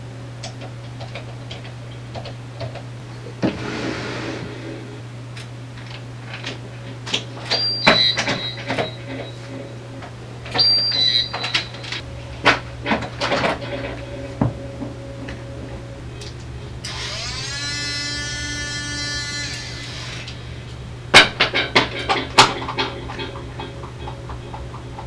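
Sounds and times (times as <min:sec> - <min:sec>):
ambient sounds: 0:03.0 - 0:25.0.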